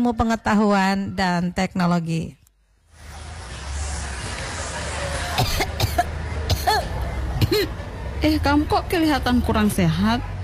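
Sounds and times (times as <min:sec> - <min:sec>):
speech: 0:00.0 - 0:02.4, 0:07.6 - 0:10.4
low murmur of chatter: 0:00.0 - 0:10.4
person with a cough and cold coughing: 0:05.4 - 0:07.7.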